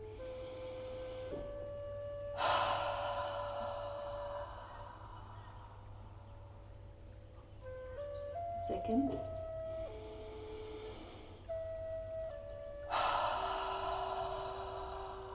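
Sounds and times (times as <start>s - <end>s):
deep breath in through the nose and out through the mouth: 0.0s - 6.8s, 9.7s - 15.3s
faint steady tone: 0.0s - 15.3s
speech: 8.8s - 9.3s.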